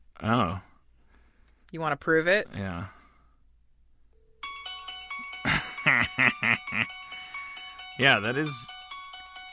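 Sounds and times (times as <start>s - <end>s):
speech: 0.2s - 0.7s, 1.7s - 3.0s, 5.8s - 7.0s, 8.0s - 8.8s
phone ringtone playing a bright repeating melodic tune: 4.2s - 9.5s
laughter: 5.4s - 6.9s.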